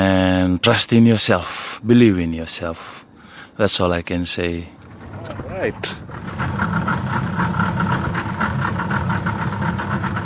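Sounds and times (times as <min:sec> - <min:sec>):
speech: 0:00.6 - 0:03.0, 0:03.6 - 0:06.8
heavy engine slowing down to idle: 0:04.8 - 0:10.2.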